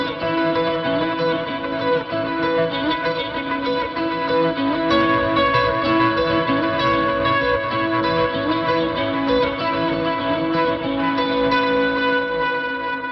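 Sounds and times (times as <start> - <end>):
ambient sound in Dover: 0.2 - 13.0.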